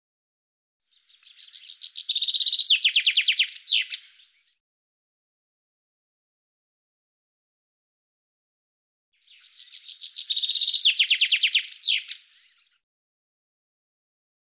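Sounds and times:
common chaffinch song: 0.9s - 4.6s, 9.2s - 12.8s.

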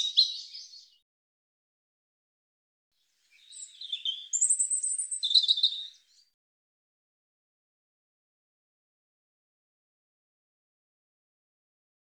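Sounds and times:
European robin singing: 0.0s - 1.0s, 3.2s - 6.3s.

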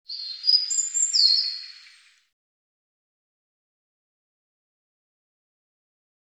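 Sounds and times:
European robin singing: 0.1s - 2.3s.

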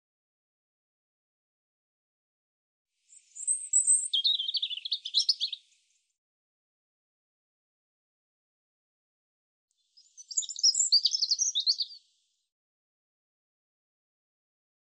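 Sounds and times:
European robin tinkling song with rapid high notes and trills: 3.1s - 5.6s, 10.0s - 12.0s.

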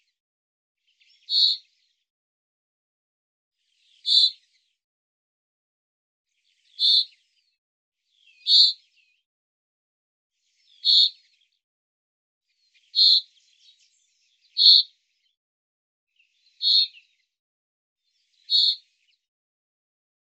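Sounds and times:
bird chirps: 0.8s - 2.0s, 3.7s - 4.7s, 6.4s - 9.2s, 10.5s - 11.6s, 12.6s - 15.4s, 16.2s - 17.3s, 18.1s - 19.2s.

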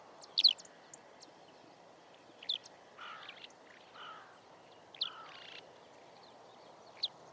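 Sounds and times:
steady background hiss: 0.0s - 7.3s
Eurasian skylark chirping: 0.2s - 7.3s.

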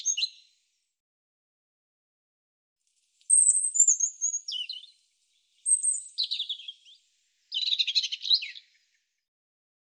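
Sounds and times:
European robin singing: 0.0s - 0.5s, 3.3s - 9.3s.

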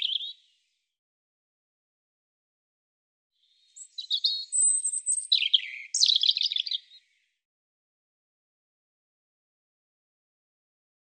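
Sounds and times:
European robin singing: 0.0s - 0.5s, 3.5s - 7.3s.

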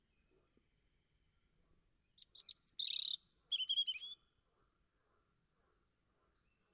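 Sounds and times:
European robin singing: 2.2s - 4.3s.

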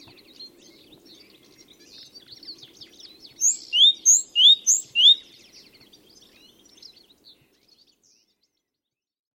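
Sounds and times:
great tit calling: 3.4s - 5.2s.

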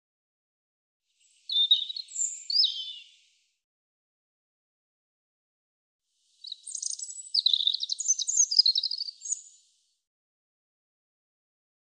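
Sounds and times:
European robin song: 1.2s - 3.4s, 6.2s - 9.9s.

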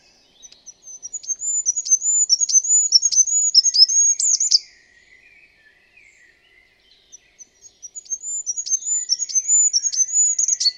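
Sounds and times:
bird song of high thin whistled notes and downslurred chirps: 0.0s - 6.2s, 7.1s - 10.7s.

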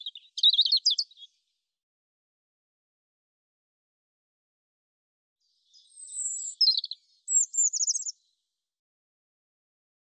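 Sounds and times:
European robin singing: 0.0s - 1.4s, 5.6s - 8.3s.

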